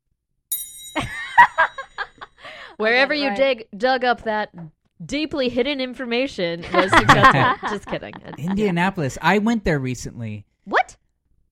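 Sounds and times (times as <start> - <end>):
single bright bell ding: 0.5 - 2.2
speech: 2.8 - 10.5
people laughing: 6.6 - 8.9.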